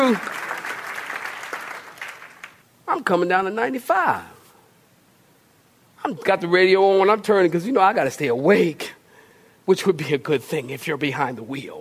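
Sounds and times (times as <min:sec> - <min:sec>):
audience applauding: 0:00.0 - 0:02.6
speech: 0:00.1 - 0:00.4, 0:03.0 - 0:04.4, 0:06.0 - 0:09.0, 0:09.6 - 0:11.7.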